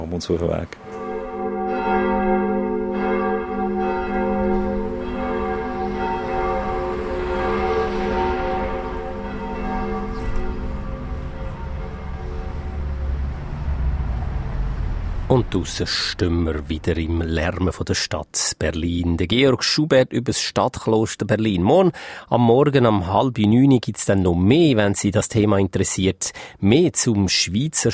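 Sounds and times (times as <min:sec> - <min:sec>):
speech: 0:00.1 - 0:01.0, 0:15.3 - 0:27.9
church bells ringing at noon: 0:00.7 - 0:14.0, 0:15.3 - 0:17.8.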